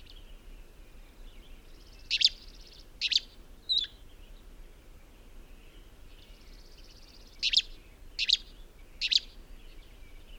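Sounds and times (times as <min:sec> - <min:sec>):
faint background noise: 0:00.0 - 0:10.3
high chirping bird calls: 0:02.0 - 0:04.0, 0:07.4 - 0:09.4.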